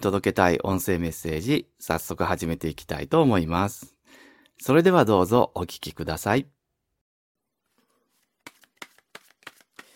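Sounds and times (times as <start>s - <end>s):
speech: 0.0s - 3.9s, 4.6s - 6.6s
tarot cards being shuffled: 7.6s - 9.9s.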